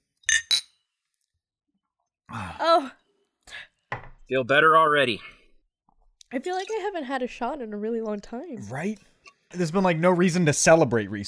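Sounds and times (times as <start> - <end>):
glasses clinking in a toast: 0.3 - 0.7
speech: 2.3 - 3.0, 4.3 - 5.4, 6.3 - 11.2.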